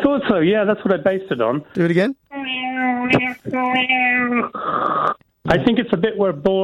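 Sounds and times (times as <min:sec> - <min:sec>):
speech: 0:00.2 - 0:02.2, 0:02.8 - 0:06.6
voice imitating a cat sucked into a black hole with buzzing wails: 0:02.3 - 0:05.0.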